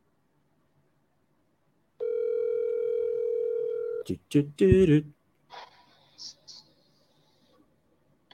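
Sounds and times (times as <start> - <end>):
outgoing phone call ringing tone: 2.0 - 4.1
speech: 4.0 - 6.4.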